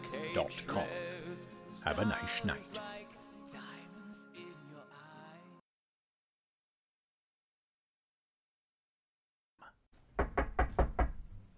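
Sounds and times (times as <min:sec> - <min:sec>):
burst of music: 0:00.0 - 0:05.6
speech: 0:00.3 - 0:01.1, 0:01.7 - 0:02.9
loud quick knocking on a door: 0:10.0 - 0:11.5.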